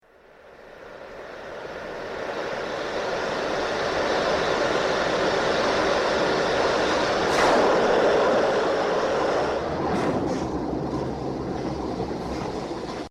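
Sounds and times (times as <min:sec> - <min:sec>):
hiss: 0:00.2 - 0:09.7
whoosh: 0:07.0 - 0:12.4.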